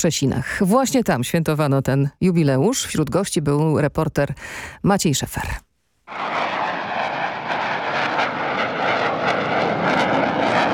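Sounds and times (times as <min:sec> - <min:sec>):
speech: 0:00.0 - 0:06.4
F-16 fighter jet engine roaring overhead: 0:06.1 - 0:10.7.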